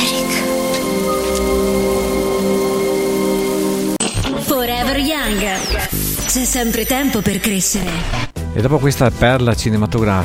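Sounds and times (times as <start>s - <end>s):
heavy rain: 0.0s - 6.1s
speech: 5.8s - 10.2s.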